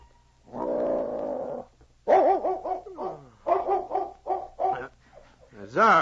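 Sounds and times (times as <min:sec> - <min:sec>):
large dog growling: 0:00.5 - 0:01.7
large dog barking: 0:02.0 - 0:04.9.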